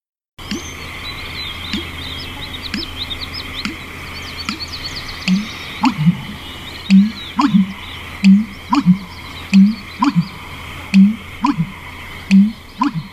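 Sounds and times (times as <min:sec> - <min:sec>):
high chirping birds: 0:00.4 - 0:13.1
steady low hum: 0:00.4 - 0:13.1
male American bittern booming call: 0:05.3 - 0:10.4, 0:11.0 - 0:13.1.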